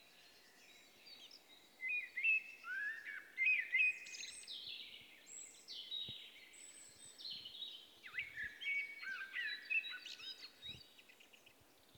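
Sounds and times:
common blackbird Turdus merula song: 0.0s - 11.9s.

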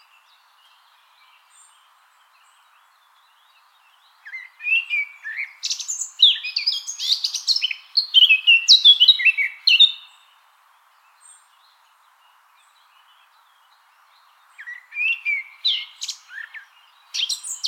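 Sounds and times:
Eurasian blackcap Sylvia atricapilla singing: 4.2s - 10.2s, 14.6s - 17.6s.

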